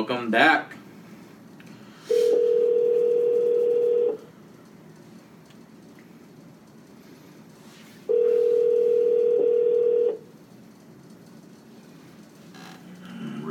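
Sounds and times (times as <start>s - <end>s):
speech: 0.0s - 0.8s
telephone dial tone while placing a call: 2.3s - 4.2s, 8.1s - 10.2s.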